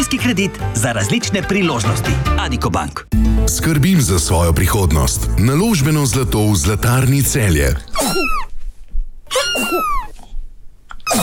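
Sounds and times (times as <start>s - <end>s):
speech: 0.1s - 8.4s
cat coughing and hacking: 7.9s - 8.5s, 9.3s - 10.1s, 11.0s - 11.2s.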